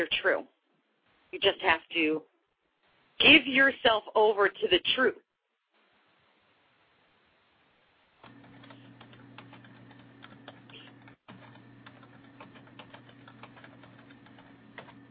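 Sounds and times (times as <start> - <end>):
speech: 0.0 - 0.6, 1.3 - 2.3, 3.2 - 5.2
constant low machine hum: 8.2 - 15.0
typing on a computer keyboard: 8.2 - 15.0.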